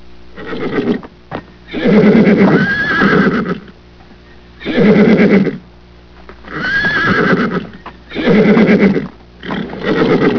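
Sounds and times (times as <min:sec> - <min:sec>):
horse whinnying: 0:00.4 - 0:01.0, 0:01.7 - 0:03.7, 0:04.6 - 0:05.6, 0:06.5 - 0:10.3.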